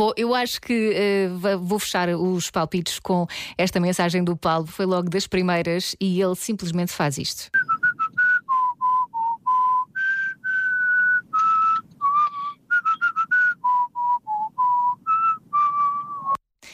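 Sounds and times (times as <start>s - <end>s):
speech: 0.0s - 7.8s
person whistling a song melody in a recorded message: 7.6s - 16.4s.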